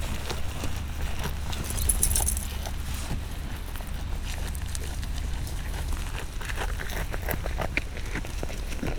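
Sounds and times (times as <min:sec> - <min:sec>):
domestic goat eating in a farmyard: 0:00.0 - 0:08.9
chain rattling in a farmyard: 0:01.4 - 0:02.8.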